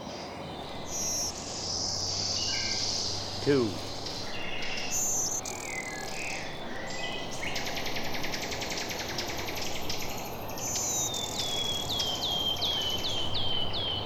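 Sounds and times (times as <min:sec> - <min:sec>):
birds: 0:00.2 - 0:14.0
black-throated green warbler singing high buzzy phrases: 0:00.2 - 0:14.0
insect noise: 0:00.4 - 0:14.0
speech: 0:03.5 - 0:03.8.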